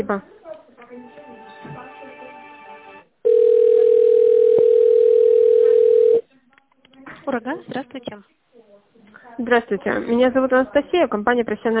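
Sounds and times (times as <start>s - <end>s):
speech: 0.0s - 0.4s, 7.2s - 8.4s, 9.4s - 11.7s
telephone line tone during a call transfer: 3.2s - 6.2s.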